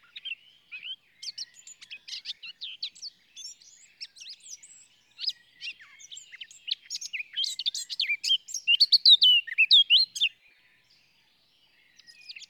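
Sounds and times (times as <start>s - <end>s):
Eurasian blackcap Sylvia atricapilla warbling song: 0.0s - 10.3s.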